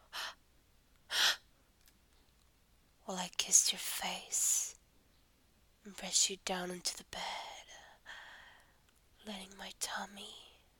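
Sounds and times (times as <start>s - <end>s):
speech: 3.1s - 4.7s, 5.8s - 7.4s, 9.2s - 10.4s
sharp open-mouthed gasps: 8.0s - 8.8s.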